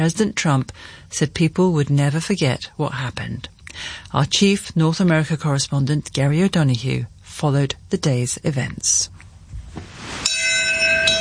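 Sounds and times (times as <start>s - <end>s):
speech: 0.0s - 9.2s
single bell ringing over Ground Zero at a memorial commemoration: 10.2s - 11.1s.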